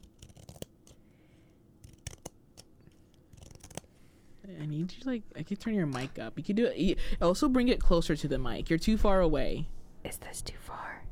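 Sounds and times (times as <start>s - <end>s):
scissors cutting a little piece of paper for ASMR: 0.0s - 1.2s, 1.8s - 3.9s
paper rustling: 0.0s - 4.0s
speech: 4.5s - 11.0s.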